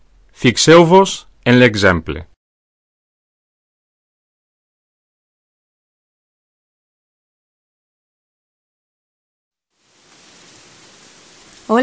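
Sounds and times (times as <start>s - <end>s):
speech: 0.4s - 2.3s
heavy rain pouring in Gandia: 9.7s - 11.8s.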